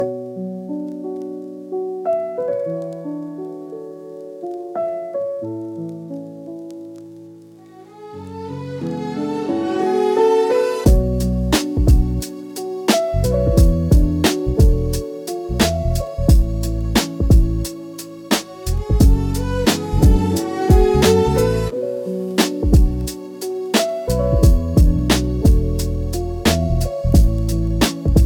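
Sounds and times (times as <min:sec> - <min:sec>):
mysterious lo-fi strings music: 0:06.2 - 0:28.2.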